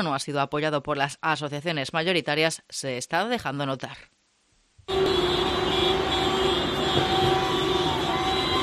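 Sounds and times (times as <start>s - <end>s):
speech: 0.0s - 4.2s, 4.9s - 5.6s
delivery vans honking horns in a convoy during a transport strike: 4.9s - 8.6s
engine and traffic rumble: 4.9s - 8.6s.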